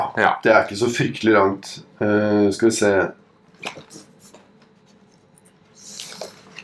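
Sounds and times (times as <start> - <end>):
speech: 0.0 - 4.0
paper pages being flipped: 3.6 - 6.6.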